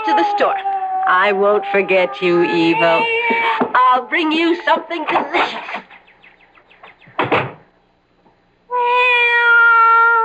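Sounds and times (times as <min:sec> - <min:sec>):
cat meowing: 0:00.0 - 0:04.6, 0:08.7 - 0:10.2
speech: 0:00.3 - 0:05.9.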